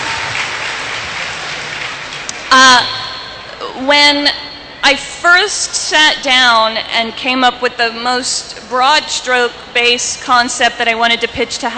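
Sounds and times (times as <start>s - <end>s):
audience round of applause: 0.0s - 3.3s
speech: 2.5s - 3.0s, 3.8s - 11.7s.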